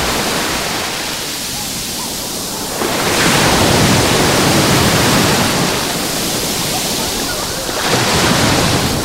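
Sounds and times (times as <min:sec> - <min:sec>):
sea waves breaking on the beach of La Charca in Salobreña: 0:00.0 - 0:09.0.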